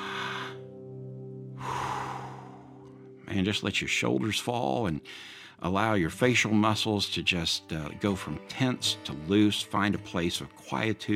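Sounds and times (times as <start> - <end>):
slow deep breathing: 0.0 - 3.3, 5.0 - 5.6
speech: 3.3 - 11.1.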